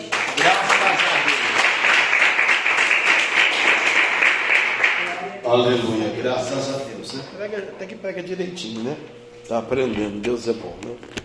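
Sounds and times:
audience applauding in praise of the Lord: 0.0s - 5.4s
speech: 5.5s - 11.2s.

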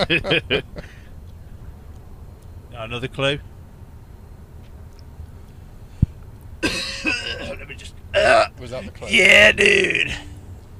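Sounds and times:
speech: 0.0s - 0.9s, 2.8s - 3.5s, 8.2s - 10.3s
laughter: 0.0s - 1.0s
person coughing in the back of a car: 6.6s - 7.6s.

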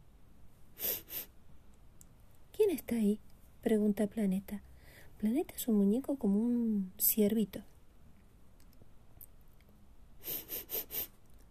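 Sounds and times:
person sniffing: 0.8s - 1.3s, 10.2s - 11.2s
speech: 2.7s - 7.7s.

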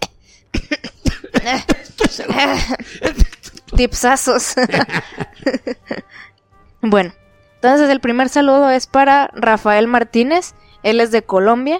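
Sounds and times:
person coughing in short hacking bursts: 0.0s - 3.7s, 4.6s - 6.3s
laughter: 0.6s - 3.7s, 4.3s - 6.2s
speech: 1.5s - 3.2s, 3.8s - 6.0s, 6.9s - 11.7s.

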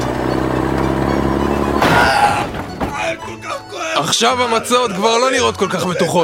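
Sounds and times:
heavy truck loaded with matzot droning: 0.0s - 3.9s
debris clattering and thudding as it settles: 1.6s - 3.5s
loud crashing impact of truck hitting a person in a demonstration: 1.8s - 3.2s
speech: 4.1s - 6.2s.

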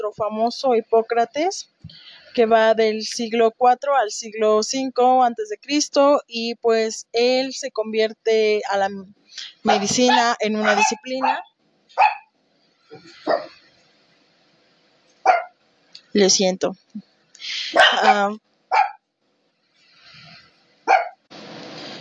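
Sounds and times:
speech: 0.0s - 12.2s, 12.9s - 13.6s, 16.2s - 18.8s
small dogs yapping: 9.7s - 12.3s, 13.0s - 13.6s, 15.2s - 15.6s, 17.7s - 19.0s, 20.9s - 21.2s.

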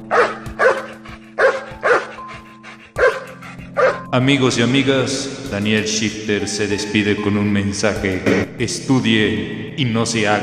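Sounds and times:
large Labrador dog barking: 0.0s - 4.1s
speech: 4.1s - 10.4s.

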